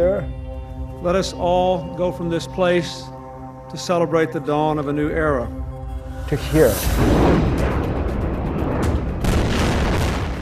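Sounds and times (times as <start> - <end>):
speech: 1.0 - 3.1, 3.7 - 5.6, 6.3 - 7.9
explosions from a barrage of incoming rockets during intense fighting: 6.8 - 10.4.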